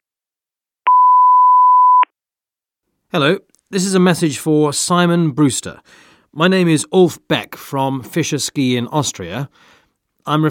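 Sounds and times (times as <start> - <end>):
answering machine beep: 0.9 - 2.1
speech: 3.1 - 10.4.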